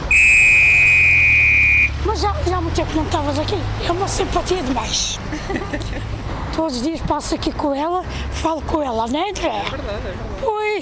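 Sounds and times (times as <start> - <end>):
loud sustained shrill whistle blast: 0.1 - 2.0
speech: 2.6 - 10.8
laughter: 5.3 - 6.2.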